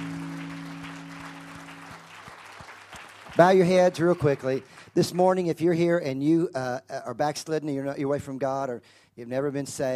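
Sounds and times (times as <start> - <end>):
low electronic hum: 0.0 - 2.2
crowd applause: 0.0 - 5.4
speech: 3.4 - 9.9.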